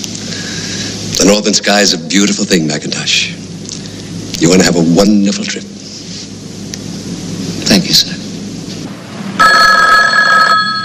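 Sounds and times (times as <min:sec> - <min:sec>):
speech: 0:01.2 - 0:03.4, 0:04.4 - 0:05.8, 0:07.8 - 0:08.2
telephone bell ringing in an office: 0:09.4 - 0:10.8.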